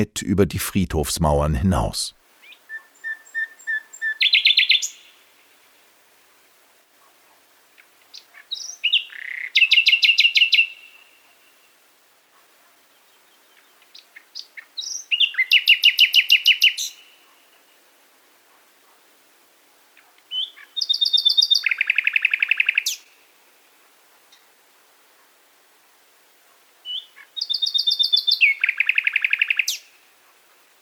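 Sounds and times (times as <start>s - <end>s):
speech: 0.0s - 2.2s
nightingale singing: 2.4s - 5.1s, 8.1s - 11.0s, 13.1s - 17.0s, 20.3s - 23.0s, 26.8s - 29.9s.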